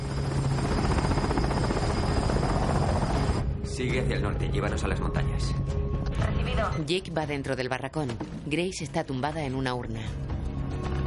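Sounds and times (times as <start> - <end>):
helicopter rotor thrum while lifting cabins on cables at night: 0.0 - 3.4
speech: 3.8 - 5.9, 6.5 - 10.3.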